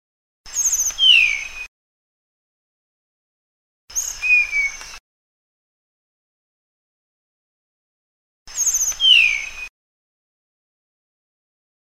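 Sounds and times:
Sunda blue flycatcher giving high whistles: 0.6 - 1.5, 8.5 - 9.7.

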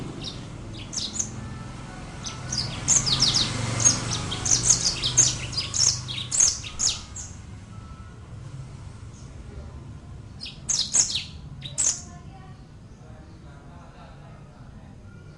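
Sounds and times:
brimstone canary giving high chirps and a jumbled warble: 0.0 - 8.2, 10.2 - 13.4
faint low background noise: 0.0 - 15.3.

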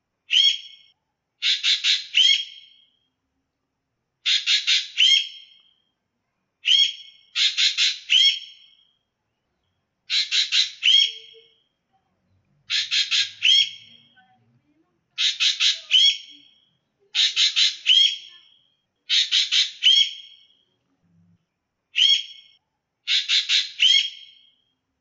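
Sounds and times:
ekek geling call variations: 0.2 - 3.1, 4.2 - 5.9, 6.6 - 9.0, 10.1 - 11.7, 12.7 - 14.2, 15.2 - 20.7, 21.9 - 24.8.

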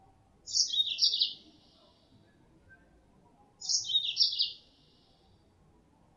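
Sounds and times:
female Mozambique canary twittering chirps: 0.5 - 1.4, 3.6 - 4.6.

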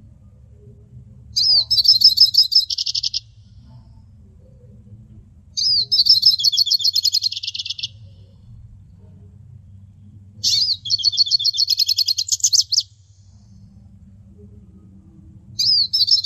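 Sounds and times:
faint low hum: 0.0 - 16.2
hooded siskin twittering: 1.4 - 3.3, 5.6 - 8.0, 10.4 - 12.9, 15.6 - 16.2.

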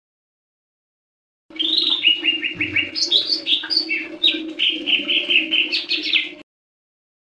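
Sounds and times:
leafbird song with varied whistles and chirps: 1.6 - 6.4.

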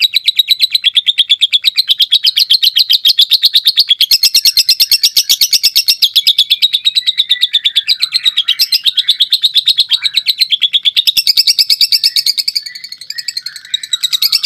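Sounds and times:
lovebird delivering long rapid trill song: 0.0 - 14.4.

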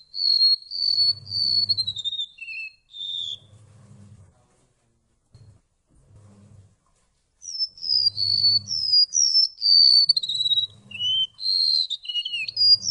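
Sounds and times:
golden-bellied gerygone whistling: 0.0 - 3.6, 7.4 - 12.8
faint low hum: 0.0 - 12.8.

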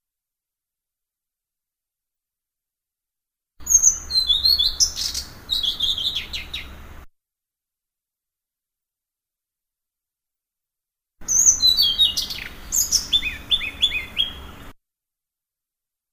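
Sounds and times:
blue-throated flycatcher singing: 3.6 - 6.8, 11.2 - 14.7.

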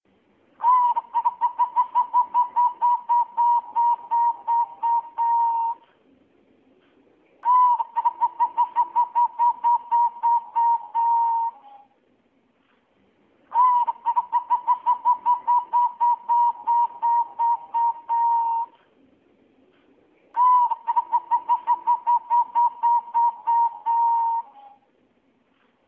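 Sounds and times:
female zebra dove calling: 0.6 - 5.9, 7.4 - 11.9, 13.5 - 18.9, 20.4 - 24.8.

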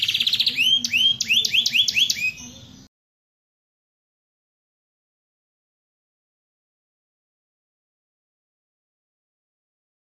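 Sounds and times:
Atlantic canary singing buzzy trill and upswept whistled notes: 0.0 - 2.9.

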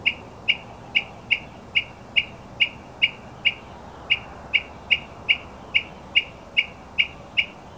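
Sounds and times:
northern mockingbird chirping: 0.0 - 7.7.

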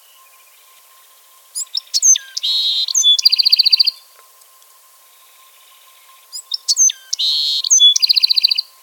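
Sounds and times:
Bewick's wren song: 0.0 - 8.8.

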